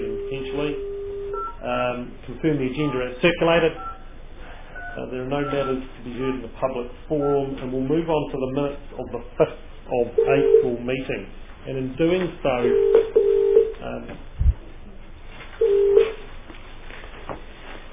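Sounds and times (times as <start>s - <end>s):
electronic telephone tones as a call connects into a council chamber: 0.1s - 1.6s, 4.8s - 5.8s, 12.6s - 13.7s, 15.6s - 16.2s
speech: 1.6s - 3.9s, 5.0s - 13.1s.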